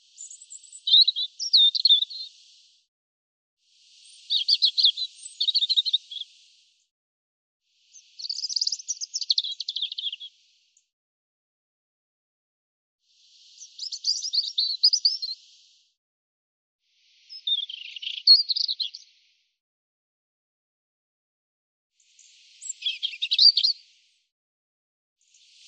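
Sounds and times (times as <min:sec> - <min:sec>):
European robin singing: 0:00.0 - 0:02.6, 0:04.1 - 0:06.4, 0:07.9 - 0:10.3, 0:13.4 - 0:15.5, 0:17.2 - 0:19.0, 0:22.1 - 0:23.8.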